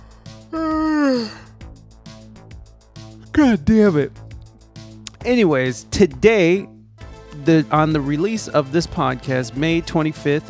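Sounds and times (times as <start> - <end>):
person yawning: 0.4 - 1.6
speech: 3.4 - 4.2, 5.2 - 6.7, 7.4 - 10.4.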